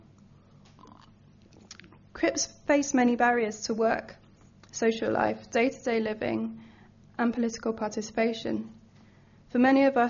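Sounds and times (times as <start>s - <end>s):
person sipping water: 0.5s - 2.1s
soft wet mouth sounds: 0.6s - 2.0s
small slurp: 0.8s - 2.0s
speech: 2.2s - 4.2s, 4.8s - 6.6s, 7.2s - 8.8s, 9.5s - 10.0s.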